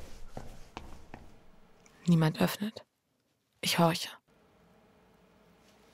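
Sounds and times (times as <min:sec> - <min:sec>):
hurried footsteps climbing a flight of stairs: 0:00.0 - 0:01.6
speech: 0:02.1 - 0:02.9, 0:03.7 - 0:04.2.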